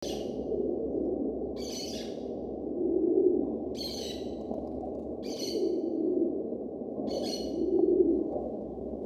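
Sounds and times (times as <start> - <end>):
Rock pigeon Columba livia in Ladakh: 0.0 - 6.4, 7.0 - 8.8.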